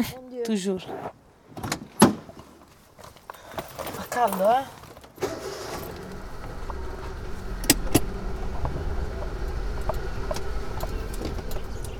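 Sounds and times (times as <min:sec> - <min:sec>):
speech: 0:00.0 - 0:01.2, 0:04.2 - 0:04.8
low rumble of car engines from a line of traffic: 0:05.2 - 0:11.9.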